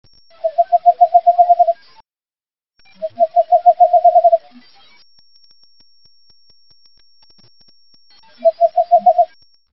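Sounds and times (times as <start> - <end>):
Megascops kennicottii calling: 0.4 - 1.8, 3.0 - 4.4, 8.4 - 9.3.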